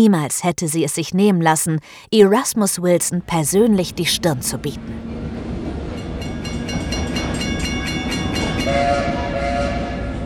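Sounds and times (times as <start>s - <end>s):
speech: 0.0s - 5.3s
locomotive-hauled train rumbling along tracks through snow-covered mountain landscape: 3.3s - 10.2s
faint rhythmic clatter of train on railway tracks: 5.1s - 8.7s.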